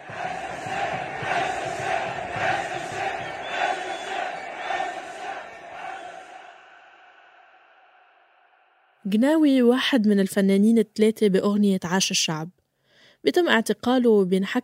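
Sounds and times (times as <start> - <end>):
Moroccan stadium crowd chanting a protest slogan: 0.0 - 9.0
speech: 9.1 - 12.6, 13.2 - 14.6.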